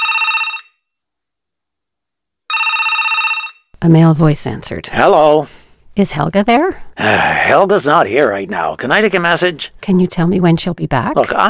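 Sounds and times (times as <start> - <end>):
telephone ringing in bright trilling bursts: 0.0 - 0.8, 2.5 - 3.8
speech: 3.8 - 11.4.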